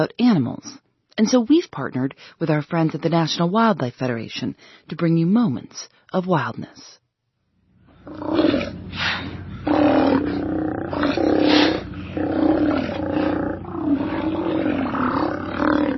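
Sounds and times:
speech: 0.0 - 7.0, 8.1 - 10.3
Steller sea lions growling and roaring: 8.0 - 15.9.

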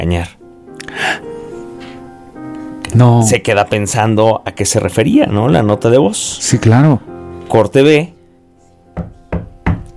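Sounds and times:
speech: 0.0 - 0.4, 3.0 - 8.2
knocking on a door late at night: 9.0 - 9.9.

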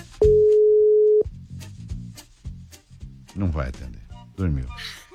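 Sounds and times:
ringing tone of an outgoing WhatsApp call: 0.3 - 1.3
speech: 3.6 - 5.0.

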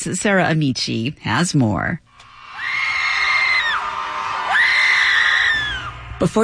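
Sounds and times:
speech: 0.0 - 2.1, 6.2 - 6.4
large crowd screaming together outdoors: 2.2 - 6.2.

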